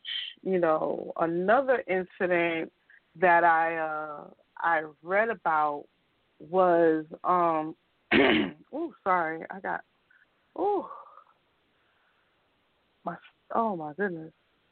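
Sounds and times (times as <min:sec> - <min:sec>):
speech: 0:00.4 - 0:09.9, 0:10.6 - 0:11.0, 0:13.0 - 0:14.4
person clearing throat with something stuck in the back of the throat: 0:08.1 - 0:08.6.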